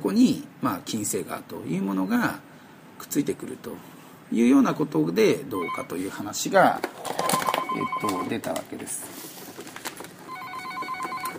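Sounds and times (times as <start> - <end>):
speech: 0.1 - 9.3
faint clatter: 6.1 - 11.3
telephone ringing with electronic trill: 7.2 - 8.4, 10.2 - 11.3.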